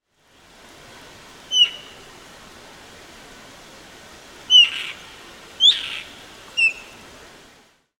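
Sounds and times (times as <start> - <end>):
Elanus axillaris black-shouldered kite calling: 1.5 - 2.0, 4.5 - 7.0.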